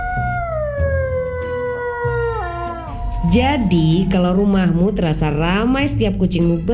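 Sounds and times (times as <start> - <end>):
dog howling: 0.0 - 5.1
speech: 3.2 - 6.7.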